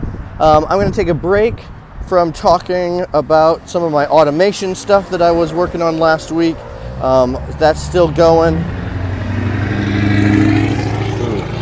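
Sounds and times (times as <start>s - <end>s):
big heavy vehicle engine rumbling past on a street: 0.0s - 11.6s
speech: 0.4s - 8.8s.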